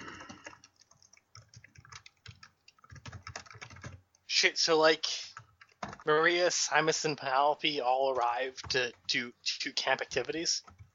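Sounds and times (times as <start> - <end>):
typing on a computer keyboard: 0.0 - 4.2, 5.3 - 6.1, 8.1 - 10.9
speech: 4.4 - 5.2, 6.1 - 10.8.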